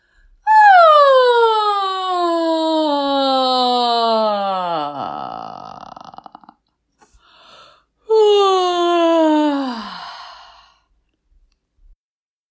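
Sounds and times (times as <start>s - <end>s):
person yawning: 0.5s - 6.5s, 8.1s - 10.7s.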